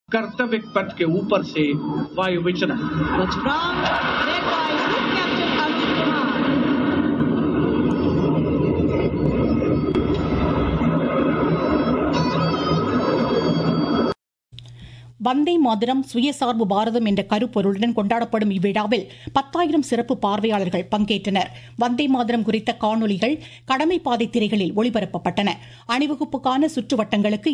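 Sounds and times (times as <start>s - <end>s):
speech: 0.1s - 6.0s, 15.2s - 27.5s
jet roar from a flypast of aircraft during a parade's aerial display: 1.0s - 14.2s.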